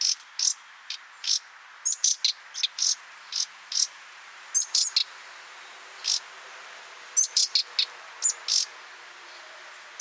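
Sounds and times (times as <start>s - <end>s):
common nightingale harsh rasping calls: 0.0s - 3.9s, 4.5s - 5.2s, 6.0s - 6.3s, 7.2s - 9.4s
soft hiss: 0.0s - 9.9s.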